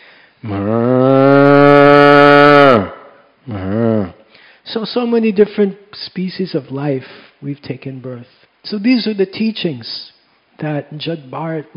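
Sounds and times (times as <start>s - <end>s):
speech: 0.4s - 0.8s, 4.7s - 11.7s
person imitating a cow mooing: 0.4s - 4.2s.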